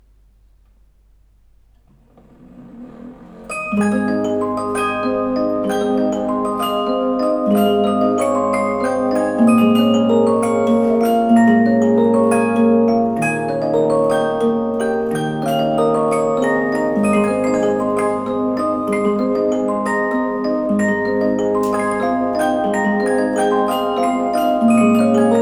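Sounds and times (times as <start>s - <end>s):
music box with metal disc: 2.4s - 25.4s.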